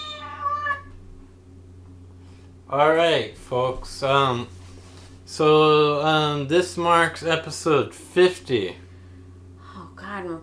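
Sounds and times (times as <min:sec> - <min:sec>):
single drawn-out cat meow: 0:00.0 - 0:00.9
low hum: 0:00.0 - 0:10.4
speech: 0:02.7 - 0:04.6, 0:05.3 - 0:08.8, 0:10.1 - 0:10.4.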